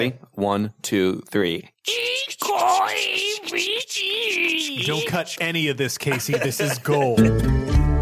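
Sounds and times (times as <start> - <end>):
speech: 0.0 - 7.9
voice imitating the creaking of a ship's rudder ropes and gears: 1.8 - 5.7
laughter: 1.9 - 7.8.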